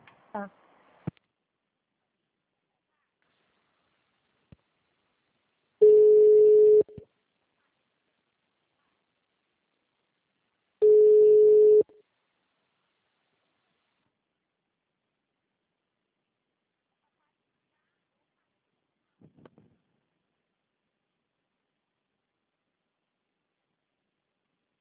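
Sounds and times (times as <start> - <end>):
telephone dialing tones: 5.8 - 7.0, 10.8 - 11.9.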